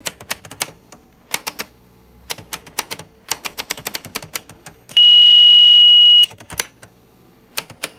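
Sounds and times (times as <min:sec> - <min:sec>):
electronic cash register keypad beeps: 0:05.0 - 0:06.4.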